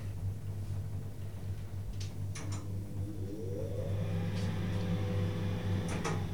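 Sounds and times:
elevator ventilation fan humming with an airy whoosh: 0.0 - 6.3
elevator motor whine as the car moves: 2.1 - 6.3.

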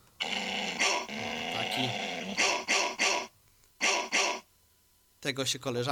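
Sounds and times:
two dogs growling and snarling: 0.2 - 3.3
speech: 1.8 - 2.0, 5.2 - 5.9.

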